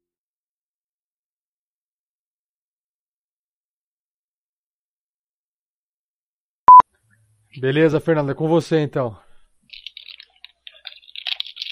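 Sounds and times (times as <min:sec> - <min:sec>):
speech: 0:07.5 - 0:09.2
crunchy sugar-frosted corn flake cereal being chewed: 0:09.7 - 0:11.7.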